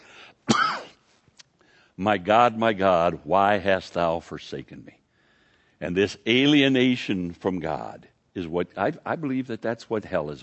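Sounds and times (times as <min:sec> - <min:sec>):
man clearing throat: 0:00.4 - 0:01.0
man coughing: 0:00.4 - 0:01.1
speech: 0:02.0 - 0:05.0, 0:05.8 - 0:10.4.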